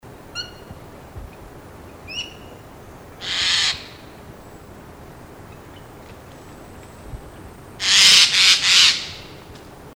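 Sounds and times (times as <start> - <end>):
Eurasian jay Garrulus glandarius birdcall: 0.3 - 0.8, 1.9 - 2.6, 3.2 - 4.6, 7.8 - 9.4.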